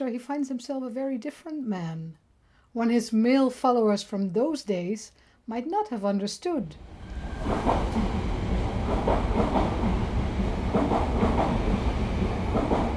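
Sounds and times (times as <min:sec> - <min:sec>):
speech: 0:00.0 - 0:02.2, 0:02.8 - 0:06.9, 0:07.6 - 0:08.1
train rumbling past on the rails: 0:06.8 - 0:12.9
train wheels clickety-clack: 0:08.8 - 0:12.9.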